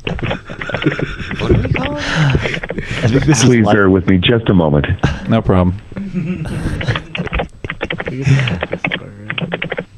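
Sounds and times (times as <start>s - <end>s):
laughter: 0.0s - 4.0s, 4.9s - 9.5s
speech: 0.8s - 7.0s, 8.2s - 8.9s
customer service agent typing on a computer keyboard: 7.3s - 9.9s.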